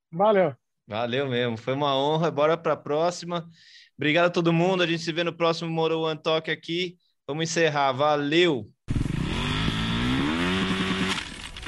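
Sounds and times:
speech: 0.1 - 8.8
motorcycle engine revving hard with loud buzzing tone: 8.9 - 11.6.

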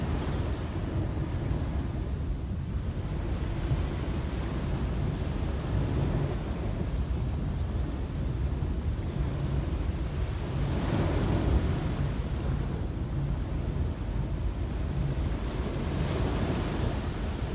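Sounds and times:
ocean surf with waves washing onto the shore: 0.0 - 17.5
steady rumble of wind: 0.0 - 17.5.

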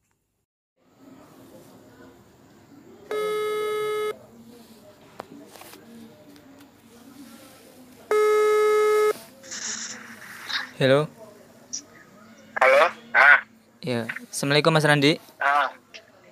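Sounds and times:
faint murmuring: 0.8 - 16.3
telephone ringback tone: 3.1 - 4.2, 8.1 - 9.2
speech: 10.8 - 11.2, 13.9 - 15.3.

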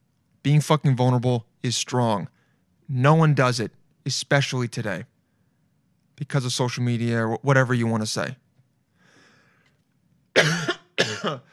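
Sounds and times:
speech: 0.4 - 5.1, 6.2 - 8.4, 10.4 - 11.5
harsh raspy coughs: 10.4 - 11.5.

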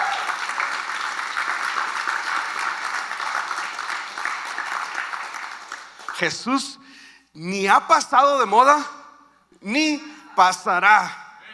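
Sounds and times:
audience applause: 0.0 - 6.3
speech: 6.2 - 9.0, 9.6 - 11.2.

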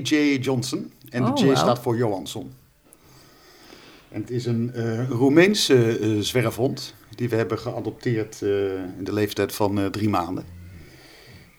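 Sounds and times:
speech: 0.0 - 2.6, 4.1 - 10.6
large adopted stray dog snoring while resting at home: 4.2 - 11.5.

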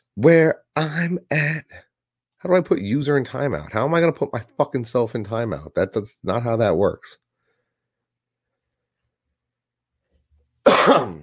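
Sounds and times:
speech: 0.2 - 7.2
harsh throaty cough: 10.6 - 11.2.

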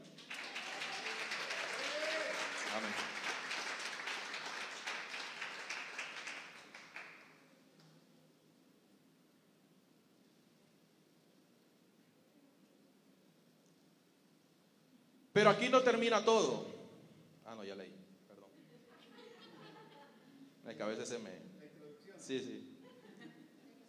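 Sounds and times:
audience applauding: 0.0 - 7.4
speech: 15.4 - 16.7, 20.8 - 21.4, 22.3 - 22.7
laughter: 18.7 - 20.5, 22.8 - 23.8.

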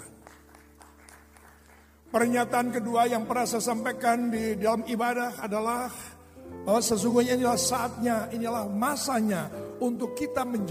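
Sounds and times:
faint crowd applauding: 0.0 - 2.1
speech: 2.1 - 10.6.

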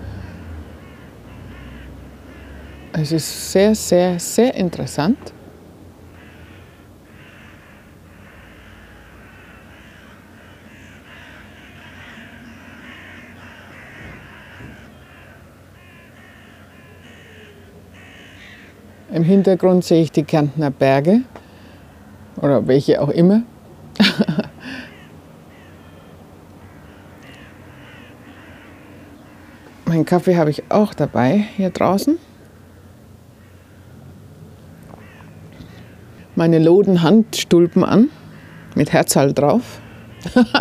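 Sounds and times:
outdoor ambience: 0.0 - 40.5
loud harsh crow caws: 0.7 - 3.1, 6.1 - 19.2, 24.6 - 29.8, 32.5 - 34.1, 34.7 - 36.4, 37.6 - 38.9, 39.6 - 40.5
speech: 3.0 - 5.4, 19.2 - 21.4, 22.4 - 24.4, 29.9 - 32.3, 36.4 - 38.2, 38.8 - 40.5
laughter: 24.0 - 24.9, 40.2 - 40.5.

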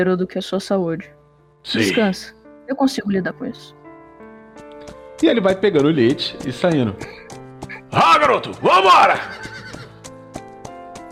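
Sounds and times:
speech: 0.0 - 3.8, 5.2 - 7.3, 7.9 - 9.5
horse hooves galloping: 5.2 - 11.0
horse whinnying: 8.6 - 10.0.

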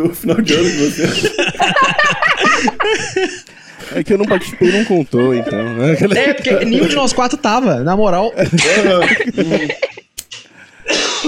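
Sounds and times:
laughter: 0.0 - 7.1, 8.3 - 10.2
speech: 0.0 - 9.9
several people coughing and hacking: 0.3 - 5.0, 8.5 - 11.2.

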